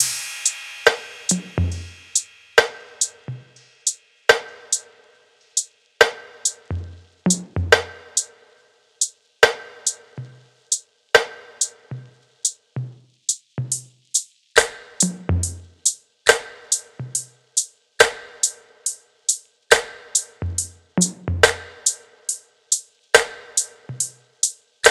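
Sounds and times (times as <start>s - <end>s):
top drum loop from a sample pack: 0.0s - 0.2s, 0.9s - 4.8s, 6.0s - 8.3s, 9.4s - 18.6s, 19.7s - 22.0s, 23.2s - 24.8s.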